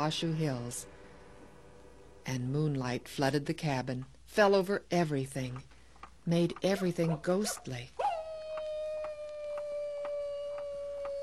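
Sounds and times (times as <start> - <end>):
speech: 0.0 - 1.0, 2.3 - 8.0
faint regular ticking pulses: 0.0 - 11.2
coyote howling: 8.0 - 11.2.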